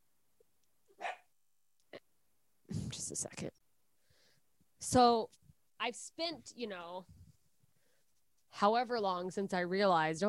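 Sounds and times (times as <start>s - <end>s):
dogs barking: 1.0s - 1.3s
speech: 3.1s - 3.5s, 4.9s - 7.2s, 8.6s - 10.2s.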